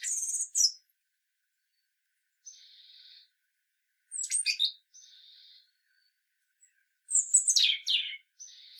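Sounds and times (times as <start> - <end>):
European robin singing: 0.0 - 0.8, 2.4 - 3.3, 4.1 - 8.7.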